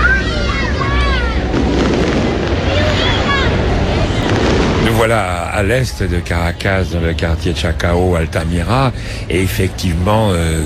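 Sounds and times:
whistling fireworks streaks rising: 0.0 - 6.2
fireworks booming and crackling at a distance: 1.4 - 6.4
speech: 5.0 - 10.6.

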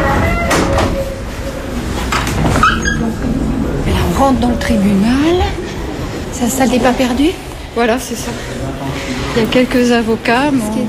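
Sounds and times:
brief high squeak of a courthouse door: 0.0 - 1.2, 2.4 - 3.2
steady busy hum: 0.0 - 10.8
speech: 4.2 - 5.6, 6.4 - 10.8.

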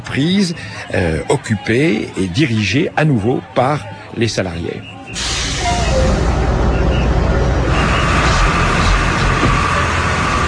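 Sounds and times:
speech: 0.1 - 5.3
interior rumble of a moving bus in Los Teques, Venezuela: 4.8 - 10.4
low bus engine drone and road noise: 5.1 - 10.4.

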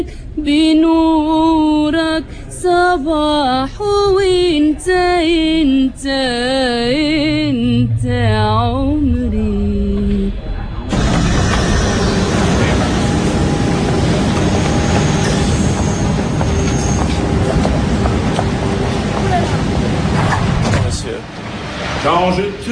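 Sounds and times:
speech: 0.0 - 10.4
droning mechanical whine of a metro train: 6.6 - 22.6
metro train rumbling along the rails: 6.6 - 22.6.

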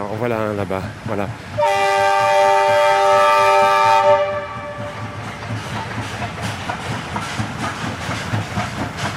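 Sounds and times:
speech: 0.0 - 1.8
steam locomotive rumbling past with rhythmic chuffing: 0.0 - 9.1
steam locomotive wheels clattering: 0.0 - 9.1
steam locomotive sounding a loud sustained whistle: 1.6 - 5.2.

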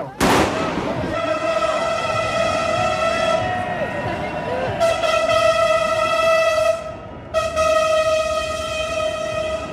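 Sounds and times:
crowd murmur at a street demonstration: 0.0 - 6.0
metro train horn blast in support of a street demonstration: 1.0 - 9.7.

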